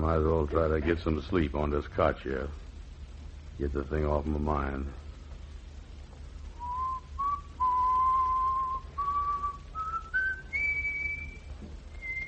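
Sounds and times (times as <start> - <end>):
speech: 0.0 - 2.7, 3.6 - 5.0
low hum: 0.0 - 12.2
person whistling a tune: 6.6 - 12.2.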